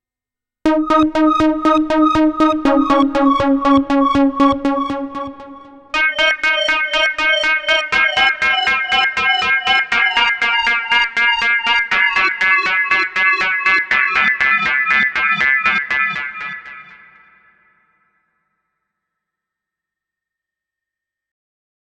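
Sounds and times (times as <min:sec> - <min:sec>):
Korg layered synth motion: 0:00.7 - 0:15.2.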